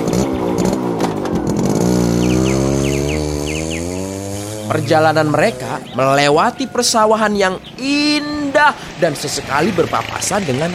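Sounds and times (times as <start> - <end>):
motorcycle engine cruising: 0.0 - 7.0
faint chirping: 2.0 - 8.6
speech: 4.7 - 10.7.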